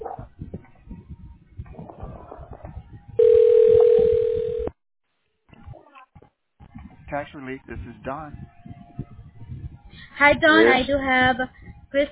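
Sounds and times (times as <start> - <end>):
telephone ring tone during call transfer: 3.2 - 4.8
speech: 7.1 - 8.6, 10.2 - 12.1.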